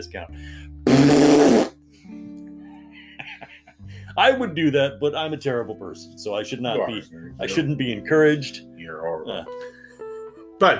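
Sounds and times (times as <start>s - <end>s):
speech: 0.0s - 2.2s, 4.2s - 9.8s, 10.6s - 10.7s
fart sound effect from a phone: 0.8s - 1.8s
laughter: 2.8s - 3.8s.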